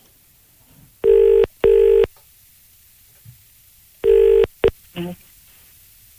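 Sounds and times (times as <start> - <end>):
telephone ringing in classic double-burst pattern: 1.0 - 2.1, 4.0 - 4.7.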